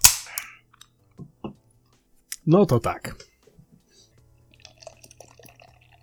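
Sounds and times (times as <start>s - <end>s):
can pull tab popping open: 0.0s - 0.5s
speech: 2.4s - 3.3s
drink pouring into a glass: 4.4s - 6.0s.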